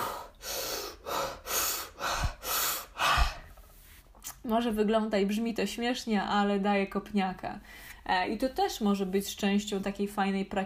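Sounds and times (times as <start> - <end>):
rapid forceful breathing: 0.0 - 3.9
speech: 4.4 - 10.6.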